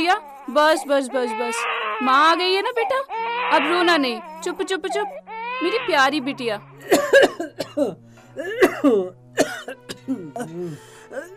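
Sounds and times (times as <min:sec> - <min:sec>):
speech: 0:00.0 - 0:11.3
elderly woman coughing in rough strained bursts: 0:06.8 - 0:11.3
elderly woman clearing her throat: 0:06.9 - 0:11.3.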